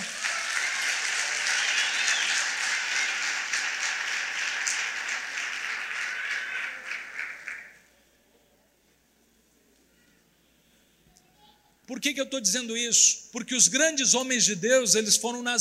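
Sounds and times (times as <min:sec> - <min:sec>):
congregation applauding: 0:00.0 - 0:07.9
speech: 0:11.9 - 0:15.5.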